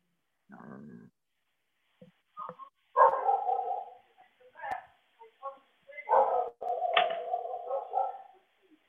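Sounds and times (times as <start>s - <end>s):
dogs barking at home while jumping up: 3.0s - 4.0s, 6.1s - 8.4s.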